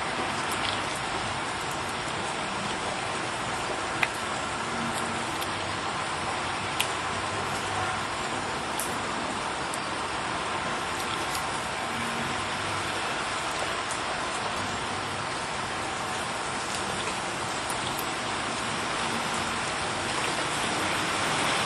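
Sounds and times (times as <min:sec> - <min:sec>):
rain falling in a small village: 0:00.0 - 0:21.6
sharper drips: 0:00.0 - 0:21.6.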